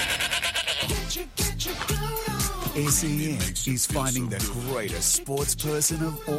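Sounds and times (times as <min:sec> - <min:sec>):
goat bleating: 0:00.0 - 0:01.2
busy rhythmic music backing: 0:00.8 - 0:06.3
speech: 0:02.8 - 0:06.3.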